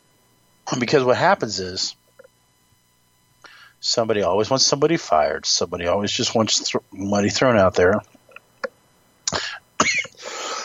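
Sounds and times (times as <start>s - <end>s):
speech: 0.7s - 2.0s, 3.8s - 8.1s
coughs from a dry throat: 9.3s - 10.6s.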